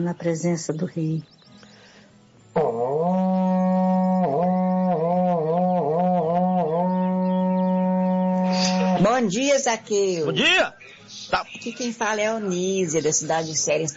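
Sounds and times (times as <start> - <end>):
speech: 0.0 - 1.4, 9.2 - 13.9
berrante cattle-calling horn blast: 2.6 - 9.0.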